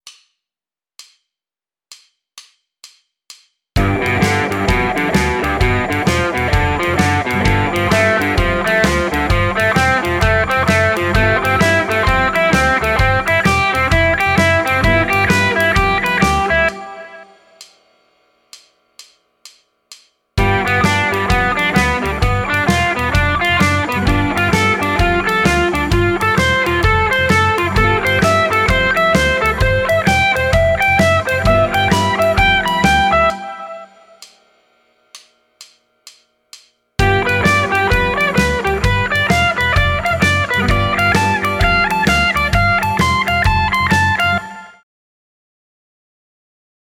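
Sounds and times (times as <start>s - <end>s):
stacking blues arpeggios on a thirteenth chord: 3.8s - 17.3s, 20.4s - 34.2s, 37.0s - 44.7s.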